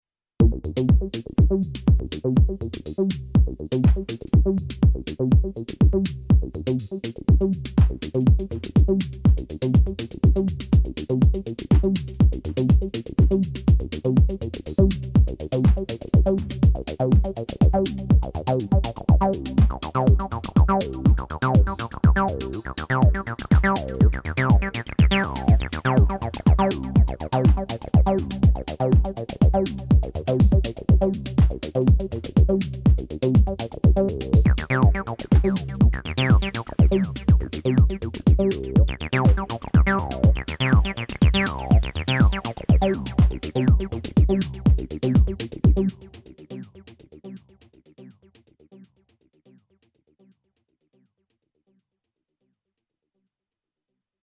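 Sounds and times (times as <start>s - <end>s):
Roland T-8 drum machine: 0.4s - 47.5s.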